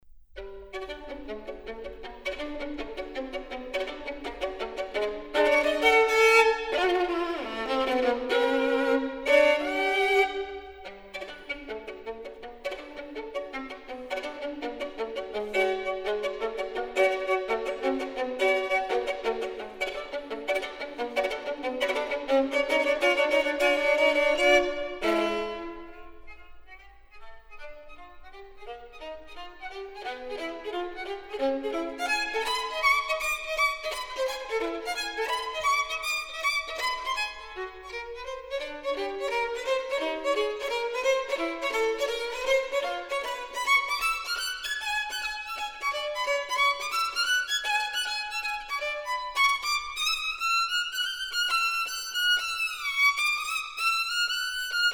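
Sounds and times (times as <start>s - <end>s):
solo violin partita scherzo: 0.4s - 54.9s.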